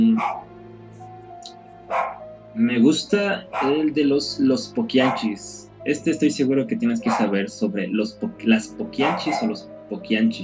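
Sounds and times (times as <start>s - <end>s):
speech: 0.0s - 0.5s, 1.9s - 10.4s
small dog barking: 0.2s - 0.4s, 1.9s - 2.2s, 3.5s - 3.8s, 5.0s - 5.3s, 7.1s - 7.4s, 9.0s - 9.5s.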